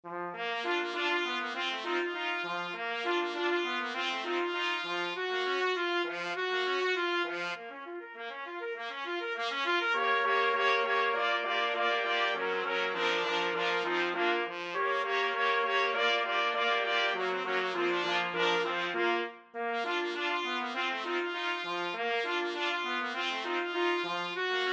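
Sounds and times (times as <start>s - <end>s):
trumpet quartet playing rag: 0.1s - 24.7s.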